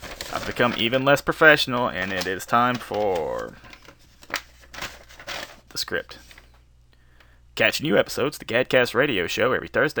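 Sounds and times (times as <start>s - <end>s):
paper being rattled and crinkled: 0.0s - 6.6s
speech: 0.4s - 3.7s, 5.8s - 6.3s, 7.6s - 9.9s.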